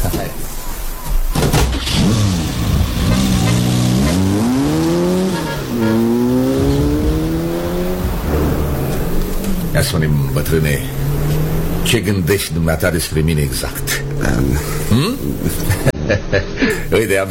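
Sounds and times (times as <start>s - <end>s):
car engine starting and revving as the vehicle pulls away: 1.8s - 15.9s
speech: 9.9s - 11.1s, 11.8s - 17.2s
laughter: 14.2s - 17.0s.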